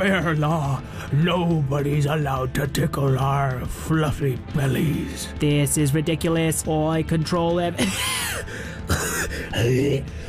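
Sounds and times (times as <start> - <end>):
speech: 0.0 - 10.2
hacking cough while trying to cough up a hairball: 7.8 - 9.9.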